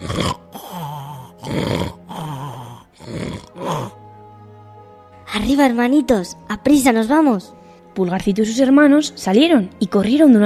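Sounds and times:
loud rasping snoring: 0.0s - 4.0s
speech: 5.5s - 10.4s.

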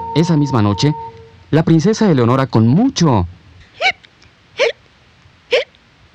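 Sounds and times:
speech: 0.2s - 4.0s
hiccups: 3.7s - 4.8s, 5.5s - 5.8s.

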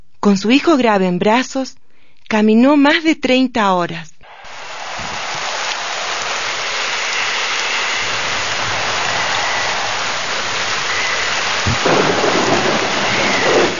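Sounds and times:
speech: 0.2s - 4.1s
dense hissing rainfall in a storm: 4.2s - 13.7s
storm wind gusts: 4.2s - 13.7s.

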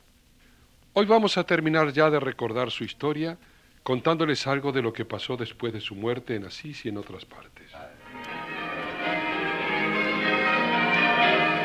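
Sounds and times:
speech: 1.0s - 8.0s
church bells ringing in Assisi announcing the death of a saint: 8.0s - 11.6s.

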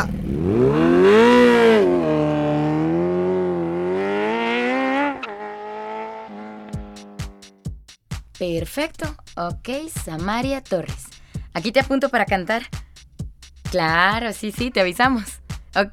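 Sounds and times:
motorcycle engine revving loudly: 0.0s - 7.7s
speech: 8.4s - 12.8s, 13.7s - 15.9s.

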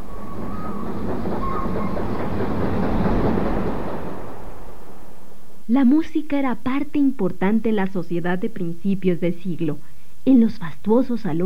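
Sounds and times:
train wheels squealing faintly: 0.0s - 4.2s
train rumbling along railway tracks: 0.0s - 5.3s
speech: 5.7s - 11.4s.

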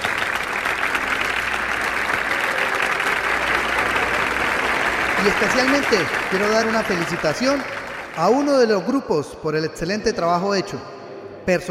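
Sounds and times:
audience applause in a school auditorium: 0.0s - 9.0s
speech: 5.2s - 11.6s.

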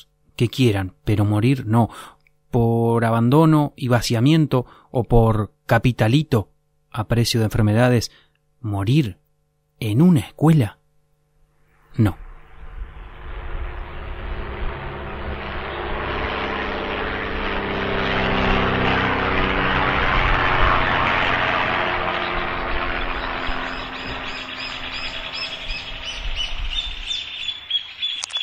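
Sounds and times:
speech: 0.0s - 9.2s, 9.8s - 10.8s, 11.9s - 12.2s
low-flying crop-dusting plane engine droning: 11.7s - 28.4s
birds chirping and tweeting: 13.7s - 28.4s.

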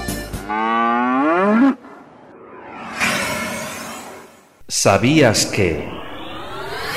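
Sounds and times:
cow mooing: 0.4s - 1.8s
speech: 4.7s - 6.0s.

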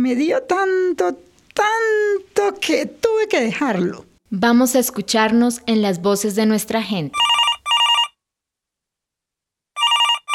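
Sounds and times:
speech: 0.0s - 7.4s
telephone ringing for an incoming call: 7.2s - 8.2s, 9.8s - 10.3s.

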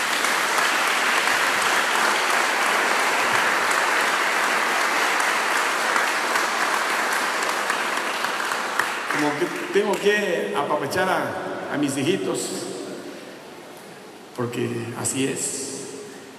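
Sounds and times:
large crowd applauding: 0.0s - 10.1s
speech: 9.4s - 12.7s, 14.4s - 15.6s.

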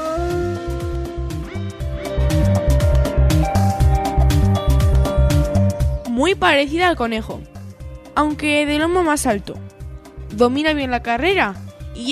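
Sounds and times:
wolf howling: 0.0s - 2.6s
rhythmic musical backing with sharp percussive hits: 0.0s - 12.1s
speech: 6.3s - 7.5s, 8.2s - 9.7s, 10.3s - 12.1s.

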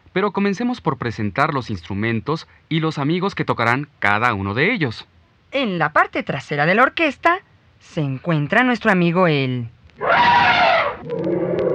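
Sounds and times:
speech: 0.2s - 11.4s
elephant trumpeting: 10.0s - 11.7s.

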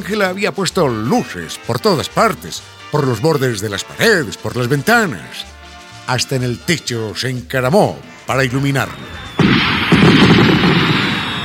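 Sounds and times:
speech: 0.0s - 9.4s
festive fireworks exploding around a house hung with lights: 8.8s - 11.4s.

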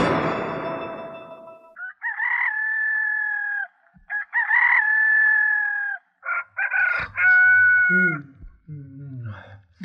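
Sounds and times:
rooster crowing: 1.8s - 8.2s.

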